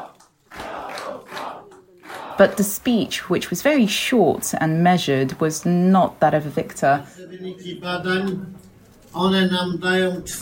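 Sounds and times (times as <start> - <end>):
large crowd chanting a slogan at an election-results gathering: 0.0 - 3.8
speech: 2.4 - 10.3.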